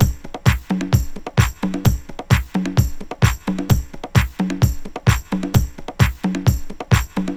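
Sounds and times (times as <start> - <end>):
very fast 130 BPM 1970s pop drum beat: 0.0 - 7.3.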